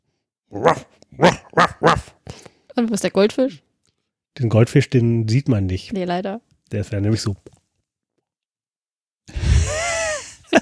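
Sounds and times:
speech: 0.5s - 1.4s, 2.8s - 3.7s, 4.4s - 7.6s
person mimicking a dog with loud voiced barks: 0.5s - 2.2s.

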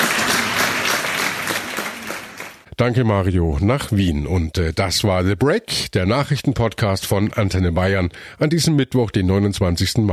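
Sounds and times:
large crowd applauding as a coffin is carried past: 0.0s - 2.6s
speech: 2.8s - 10.1s.

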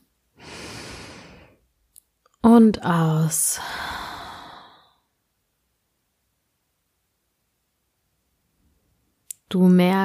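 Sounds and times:
deep inhalation of a guided meditation: 0.4s - 1.6s, 3.6s - 5.0s
speech: 2.4s - 3.9s, 9.5s - 10.0s.

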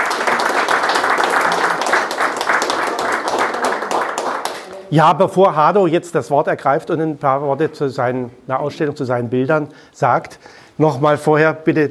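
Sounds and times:
audience applause for an artist at an exhibition of his paintings: 0.0s - 4.9s
speech: 4.9s - 11.8s.

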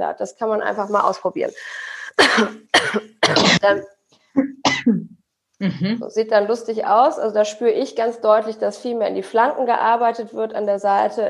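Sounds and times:
speech: 0.0s - 11.2s
person coughing into a fist as a breathing exercise: 2.2s - 3.8s.

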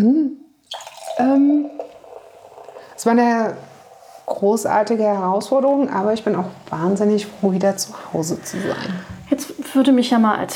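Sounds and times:
champagne being poured into a glass: 0.6s - 4.4s
speech: 3.0s - 3.7s, 4.4s - 10.5s.

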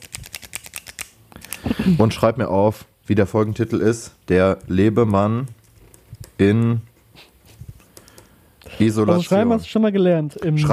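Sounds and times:
ballpoint pen clicking into a microphone: 0.0s - 1.6s
speech: 1.8s - 5.6s, 6.4s - 7.3s, 8.8s - 10.7s.

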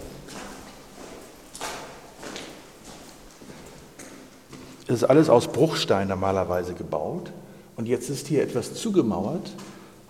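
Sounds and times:
hard-soled footsteps on a stone floor in a quarry stone vault: 0.0s - 4.9s
speech: 4.9s - 9.7s.

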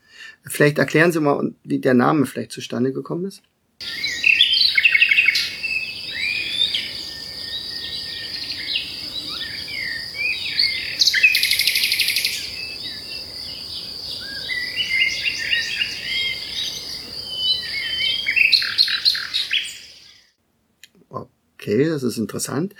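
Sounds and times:
speech: 0.4s - 4.0s, 21.7s - 22.7s
steady insect-like buzz: 3.8s - 20.2s
nightingale singing: 3.8s - 20.3s.

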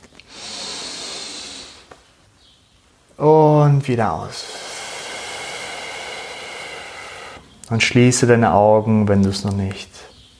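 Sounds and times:
deep inhalation: 0.2s - 2.0s, 4.3s - 7.5s
speech: 3.2s - 4.5s, 7.7s - 10.1s.

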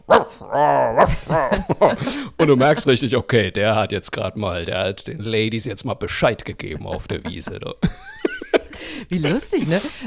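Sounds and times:
dog woofing and whimpering softly in its sleep: 0.0s - 1.6s
speech: 0.4s - 10.0s
laughter: 1.0s - 3.5s, 6.3s - 10.0s.

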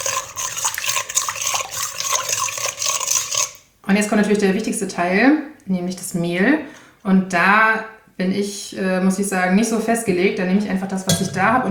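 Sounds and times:
lukewarm water poured for yeast dough: 0.0s - 3.6s
stirring scrapes: 0.0s - 3.7s
speech: 3.9s - 11.6s.

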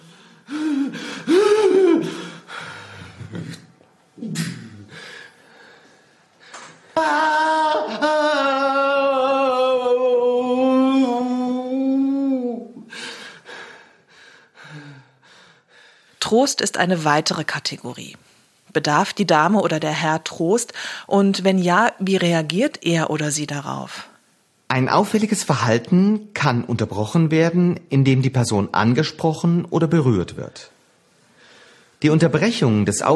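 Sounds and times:
breathy sounds: 0.0s - 8.7s, 11.4s - 16.1s
person groaning involuntarily: 0.5s - 2.4s, 3.2s - 5.1s, 7.0s - 12.9s
speech: 16.3s - 24.1s, 24.7s - 30.8s, 32.0s - 33.1s.

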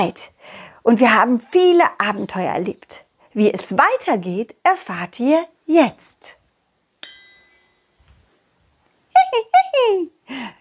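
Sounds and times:
speech: 0.0s - 6.4s, 9.3s - 10.5s
single bright metallic doorbell ring: 7.0s - 8.4s.

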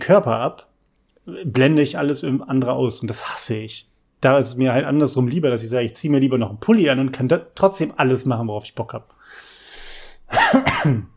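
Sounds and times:
speech: 0.0s - 0.7s, 1.3s - 9.5s, 10.3s - 11.1s
sharp breath in: 9.2s - 10.3s
person coughing harshly: 10.3s - 11.1s.

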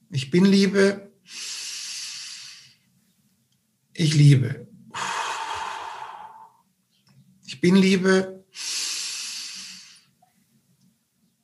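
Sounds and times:
speech: 0.3s - 1.4s, 4.0s - 4.7s, 7.6s - 8.7s
slow soft exhale during breathing meditation: 1.3s - 2.8s, 4.9s - 6.6s, 8.6s - 10.2s.

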